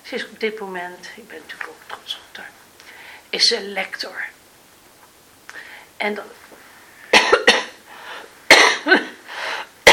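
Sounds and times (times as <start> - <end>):
speech: 0.1 - 2.2, 3.3 - 4.4, 6.0 - 6.5
harsh coughing fit: 7.1 - 7.8, 8.5 - 9.2.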